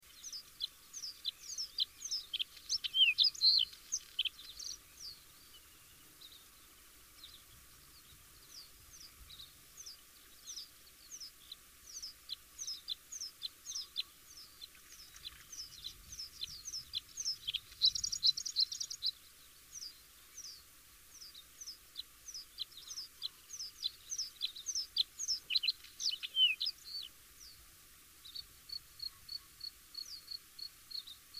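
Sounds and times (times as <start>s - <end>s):
bluethroat singing: 0.0s - 27.6s, 28.2s - 31.3s.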